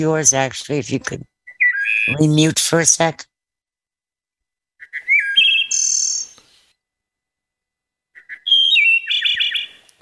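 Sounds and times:
speech: 0.0s - 1.3s, 1.9s - 3.3s
wood thrush song: 1.4s - 2.2s, 4.8s - 6.7s, 8.1s - 9.9s.

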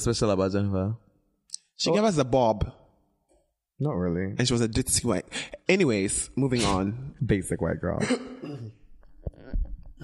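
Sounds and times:
speech: 0.0s - 1.0s, 1.8s - 2.8s, 3.8s - 9.4s
throat-clearing cough: 6.6s - 7.0s, 8.0s - 8.8s.

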